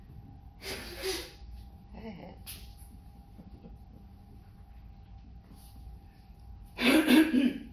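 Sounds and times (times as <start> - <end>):
faint steady hum: 0.0 - 7.7
person blowing nose: 0.6 - 1.4.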